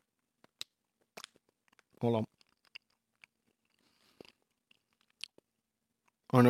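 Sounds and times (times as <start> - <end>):
chewing soft candy against the microphone: 0.1 - 6.3
sticky mouth clicks and smacks: 0.4 - 5.5
speech: 2.0 - 2.3.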